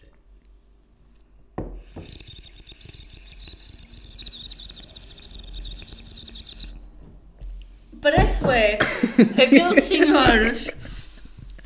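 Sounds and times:
water-filled bird whistle trilling and chirping: 1.6s - 6.9s
speech: 8.3s - 10.8s
laughter: 8.8s - 11.6s.

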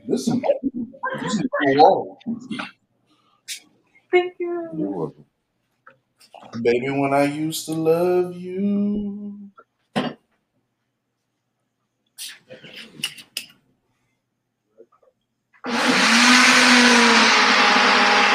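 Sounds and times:
speech: 0.1s - 0.7s, 1.3s - 2.8s, 3.5s - 5.3s, 6.4s - 10.2s
blender whirring making a watermelon fruit juice smoothie: 15.6s - 18.3s.

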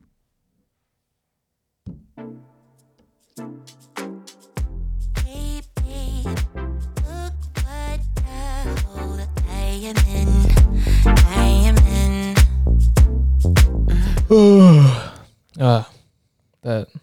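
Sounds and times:
busy vocal sounds: 7.2s - 12.8s, 13.8s - 16.0s, 16.7s - 17.0s
person yawning loudly: 13.9s - 15.9s, 16.7s - 17.0s
short breathy noise: 13.9s - 16.0s, 16.7s - 17.0s.

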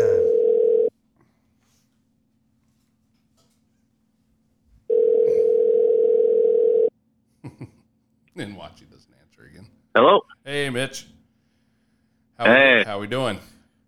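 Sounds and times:
telephone ringback tone: 0.0s - 0.9s, 4.9s - 6.9s
speech: 8.4s - 11.2s, 12.4s - 13.5s.

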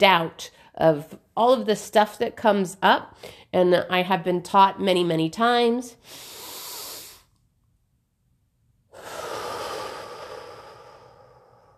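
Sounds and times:
speech: 0.0s - 6.3s
person taking a deep breath in and out to release chest tightness: 6.0s - 7.4s, 8.9s - 11.7s.

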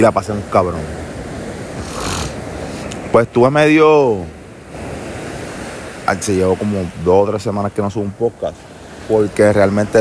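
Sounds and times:
speech: 0.0s - 1.0s, 3.1s - 4.4s, 6.1s - 10.0s
ocean waves washing: 0.0s - 10.0s.

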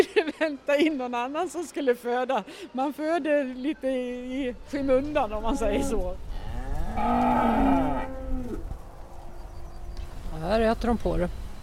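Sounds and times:
speech: 0.4s - 6.3s, 7.0s - 7.8s, 10.4s - 11.4s
cow mooing in a barn: 5.7s - 9.4s.

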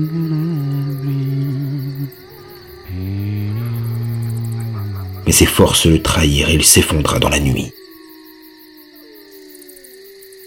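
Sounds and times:
speech: 0.0s - 0.4s, 5.3s - 7.8s
wolves howling: 0.7s - 6.2s.

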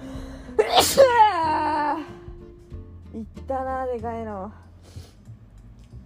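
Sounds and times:
loud sneeze: 0.6s - 1.5s
speech: 1.0s - 1.2s, 3.2s - 5.0s.

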